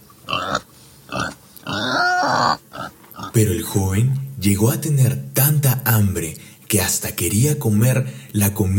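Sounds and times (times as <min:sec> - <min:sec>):
pigs grunting: 0:00.2 - 0:03.4
speech: 0:03.4 - 0:08.7.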